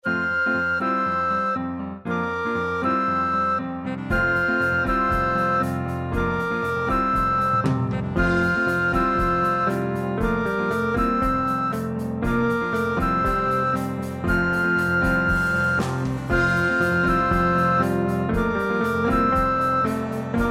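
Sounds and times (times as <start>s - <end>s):
woodwinds and saxophone playing a carol: 0.0s - 20.4s.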